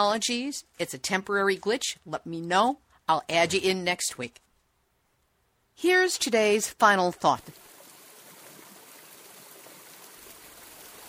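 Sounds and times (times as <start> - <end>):
speech: 0.0 - 4.4, 5.8 - 7.7
mountain stream full of snowmelt rushing downhill in a national forest: 7.5 - 11.0.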